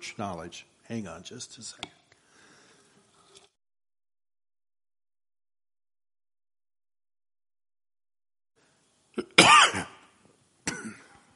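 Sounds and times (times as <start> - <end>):
speech: 0.0 - 2.0
harsh rasping throat clearing: 9.2 - 10.0, 10.7 - 11.2
person coughing: 9.2 - 10.0, 10.7 - 11.2.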